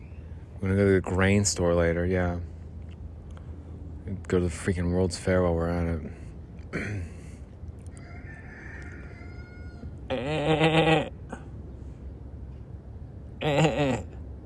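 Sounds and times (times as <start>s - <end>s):
quiet outdoor noise: 0.0s - 14.4s
speech: 0.6s - 2.5s, 4.1s - 7.1s
goat bleating: 10.1s - 11.2s, 13.4s - 14.2s.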